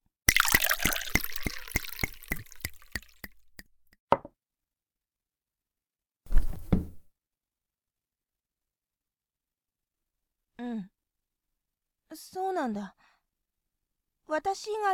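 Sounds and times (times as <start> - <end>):
coffee pouring into a cup: 0.3 - 3.6
speech: 10.6 - 11.0, 12.1 - 13.1, 14.3 - 14.9.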